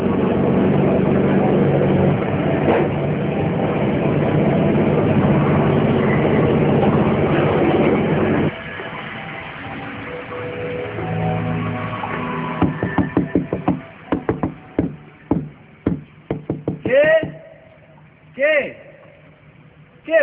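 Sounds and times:
steady noise: 0.0s - 20.2s
knocking on a door at night: 12.6s - 17.4s.

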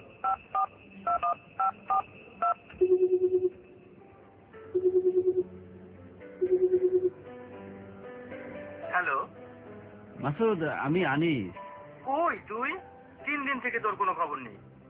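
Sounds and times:
mobile phone keypad tones: 0.2s - 3.7s, 4.8s - 5.4s, 6.4s - 7.2s
phone ringing tone: 0.2s - 3.8s, 4.7s - 5.5s, 6.4s - 7.2s
speech: 10.3s - 12.9s, 13.5s - 14.7s.

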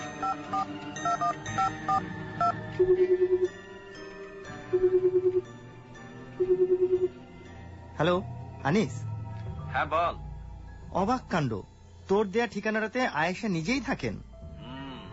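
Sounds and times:
touch-tone beeps from a telephone dialed in a hotel room: 0.2s - 3.5s, 4.7s - 5.4s, 6.4s - 7.1s
speech: 0.4s - 3.7s, 4.7s - 5.6s, 6.4s - 7.2s, 8.0s - 9.1s, 9.7s - 10.2s, 10.9s - 14.3s
warbling telephone ring tone: 4.7s - 5.5s, 6.4s - 7.1s.

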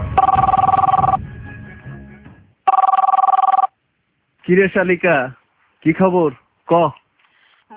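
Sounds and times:
telephone ringing: 0.2s - 1.2s, 2.7s - 3.8s
speech: 4.5s - 7.0s.

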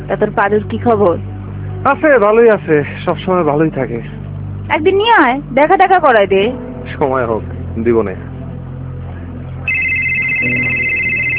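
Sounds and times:
speech: 0.1s - 8.3s, 10.4s - 10.8s
mobile phone ringtone for an incoming call: 9.7s - 11.3s.

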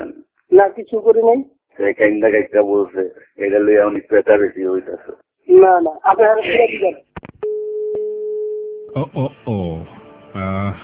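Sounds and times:
speech: 0.6s - 7.1s, 9.0s - 10.8s
steady electronic telephone tone as a call is cut off: 7.4s - 8.9s.

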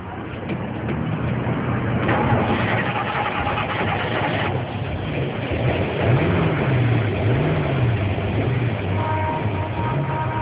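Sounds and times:
car engine starting and running: 0.3s - 10.3s.

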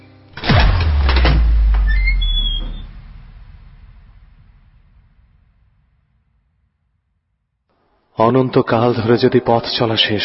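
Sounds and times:
door opening: 0.4s - 2.9s
faint high squeaks: 1.8s - 2.9s
speech: 8.2s - 10.2s.

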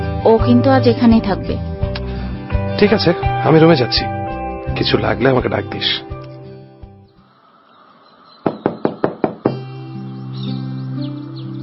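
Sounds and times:
speech: 0.2s - 1.7s, 2.8s - 6.1s
sharp knocking on a bedroom door: 8.4s - 9.7s.

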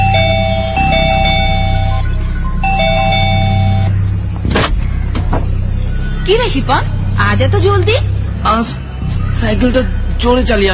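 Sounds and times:
electronic doorbell ringing with a multi-tone chime: 0.0s - 3.9s
loud constant droning hum: 0.0s - 10.7s
speech: 6.3s - 10.7s.

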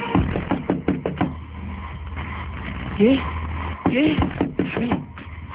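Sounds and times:
knocking on a door: 0.2s - 1.4s, 3.9s - 5.1s.

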